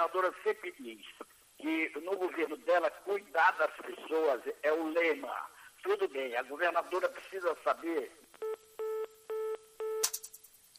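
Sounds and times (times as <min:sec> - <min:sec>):
speech: 0:00.0 - 0:08.2
telephone tone beeps after a dropped call: 0:08.4 - 0:10.3
sharp click: 0:10.0 - 0:10.7.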